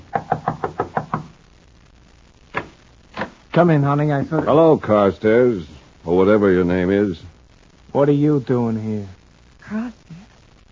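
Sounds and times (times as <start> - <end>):
firm knocking on a door: 0.1 - 1.3
speech: 3.6 - 7.3, 7.9 - 10.1.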